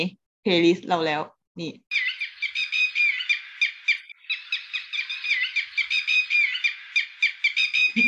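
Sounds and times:
speech: 0:00.0 - 0:02.1
several red-wattled lapwings calling: 0:01.9 - 0:08.0.

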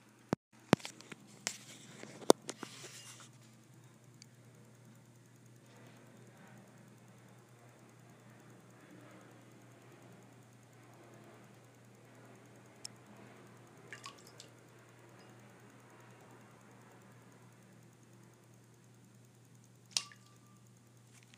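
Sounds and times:
steady low hum: 0:00.0 - 0:21.3
pet splashing water in its water bowl: 0:13.9 - 0:14.6, 0:20.0 - 0:20.4.

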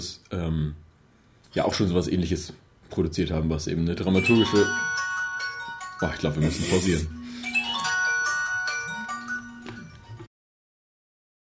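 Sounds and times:
speech: 0:00.0 - 0:00.8, 0:01.5 - 0:05.0, 0:06.0 - 0:07.2
telephone melodic electronic ringtone: 0:04.2 - 0:10.0.

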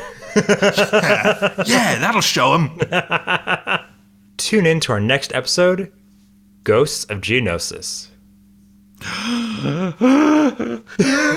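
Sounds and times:
laughter: 0:00.0 - 0:04.0, 0:09.5 - 0:11.3
speech: 0:00.4 - 0:03.8, 0:04.4 - 0:06.0, 0:06.6 - 0:08.1, 0:09.0 - 0:11.3
person gasping in exaggerated drawn-out gasps: 0:09.0 - 0:11.3.

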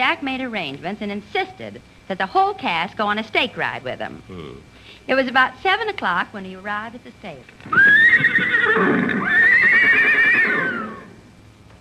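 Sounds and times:
speech: 0:00.0 - 0:09.4
horse whinnying: 0:07.6 - 0:11.2.

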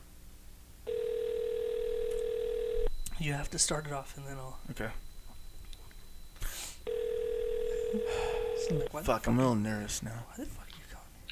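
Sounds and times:
telephone dial tone while placing a call: 0:00.9 - 0:03.0, 0:06.9 - 0:08.9
speech: 0:03.2 - 0:05.1, 0:08.7 - 0:10.7.

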